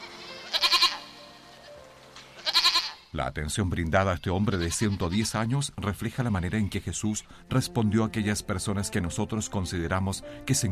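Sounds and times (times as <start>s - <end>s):
goat bleating: 0.0s - 1.6s, 2.3s - 3.1s, 4.0s - 5.5s, 6.1s - 7.0s
speech: 3.1s - 10.6s.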